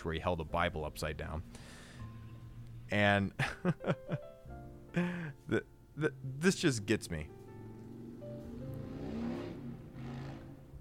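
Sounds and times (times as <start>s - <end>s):
speech: 0.0s - 1.8s, 2.9s - 7.4s
loud Harley-Davidson motorcycle engine rumbling and revving outside: 7.8s - 10.7s.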